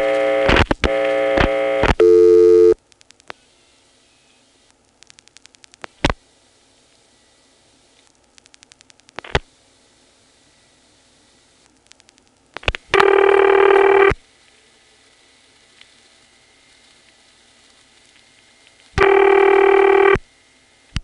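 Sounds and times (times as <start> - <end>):
telephone dialing tones: 0.0 - 2.8, 12.9 - 14.2, 19.0 - 20.2.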